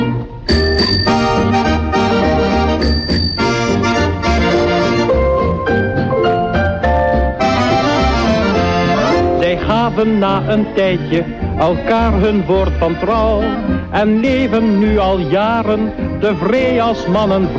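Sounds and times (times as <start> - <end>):
loud busy instrumental music: 0.2 - 17.5
bicycle bell ringing: 0.5 - 1.6, 2.8 - 4.1
speech: 10.0 - 17.5.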